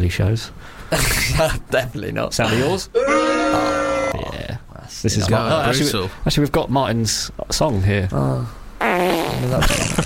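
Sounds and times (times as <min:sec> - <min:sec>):
speech: 0:00.1 - 0:03.7, 0:05.0 - 0:10.0
fart noise sound effect from a machine with buttons: 0:08.8 - 0:10.0.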